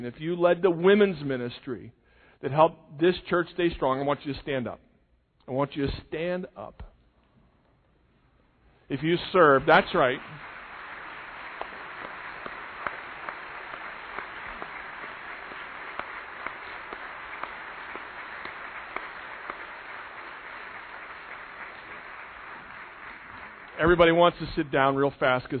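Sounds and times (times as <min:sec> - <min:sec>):
speech: 0:00.0 - 0:04.9, 0:05.5 - 0:06.9, 0:08.9 - 0:10.5, 0:23.8 - 0:25.5
audience applause: 0:09.4 - 0:24.7
individual sharp claps: 0:09.4 - 0:24.8.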